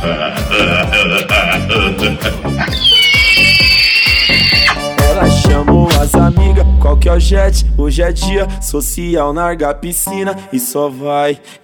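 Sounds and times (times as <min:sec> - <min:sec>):
laughter: 0:00.0 - 0:02.8
speech: 0:00.0 - 0:02.8, 0:06.2 - 0:11.6
pig squealing: 0:02.6 - 0:05.0.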